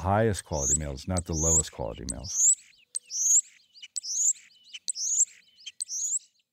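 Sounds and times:
speech: 0:00.0 - 0:02.6
songbird singing bright high sweeping trills: 0:00.0 - 0:06.5.

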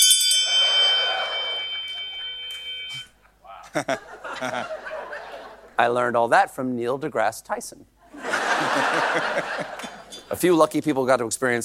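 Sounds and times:
bell ringing: 0:00.0 - 0:03.2
people chuckling: 0:00.5 - 0:02.3, 0:03.5 - 0:05.8, 0:08.1 - 0:10.1
speech: 0:03.7 - 0:04.8, 0:05.8 - 0:08.0, 0:08.7 - 0:11.6.

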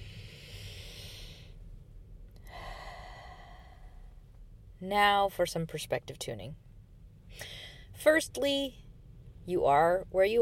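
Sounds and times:
slow deep breath: 0:00.0 - 0:01.7, 0:02.4 - 0:04.4, 0:07.3 - 0:08.0
low rumble: 0:00.0 - 0:10.4
speech: 0:04.8 - 0:06.7, 0:07.4 - 0:08.8, 0:09.5 - 0:10.4.

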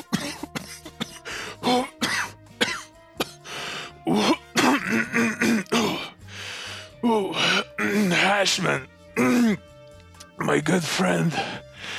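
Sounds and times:
short gasping breaths: 0:00.0 - 0:02.0, 0:03.2 - 0:08.3, 0:11.3 - 0:11.9
person in a prolonged hacking coughing fit: 0:00.0 - 0:03.4, 0:04.1 - 0:06.2, 0:07.4 - 0:08.2, 0:09.2 - 0:09.6
raspy throat-clearing: 0:00.0 - 0:03.4, 0:04.1 - 0:06.2, 0:09.2 - 0:09.6
speech: 0:01.7 - 0:01.9, 0:08.6 - 0:09.4, 0:10.5 - 0:11.6.

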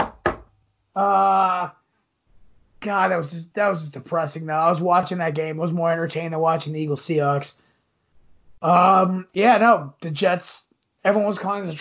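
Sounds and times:
knocks on a hard surface: 0:00.0 - 0:00.5
speech: 0:01.0 - 0:01.8, 0:02.8 - 0:07.6, 0:08.6 - 0:11.7.

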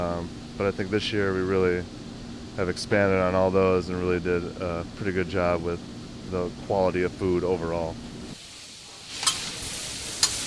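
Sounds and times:
speech: 0:00.0 - 0:02.0, 0:02.6 - 0:08.1
vegetables and meat frying on a hot grill skillet in a galley: 0:08.2 - 0:10.4
utensil scraping skillet: 0:08.9 - 0:10.4.

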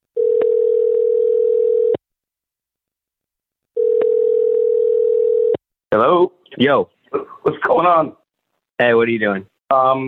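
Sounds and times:
phone ringback tone on a recorded phone call: 0:00.2 - 0:02.0, 0:03.8 - 0:05.6
speech: 0:06.0 - 0:08.2, 0:08.8 - 0:10.0.

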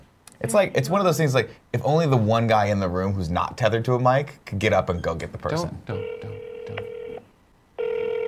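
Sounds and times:
speech: 0:00.4 - 0:06.9
phone ringback tone: 0:05.9 - 0:07.2, 0:07.8 - 0:08.2.

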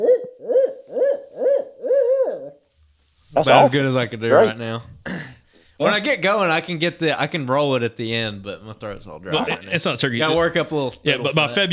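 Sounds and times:
man imitating owl hooting calls: 0:00.0 - 0:02.6, 0:03.4 - 0:04.5
speech: 0:03.4 - 0:05.2, 0:05.8 - 0:11.7.

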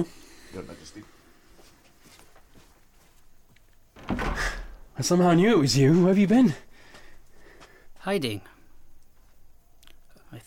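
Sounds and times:
speech: 0:00.0 - 0:01.2, 0:05.0 - 0:06.7, 0:08.0 - 0:08.5
wooden door swinging and shutting: 0:03.9 - 0:05.2.

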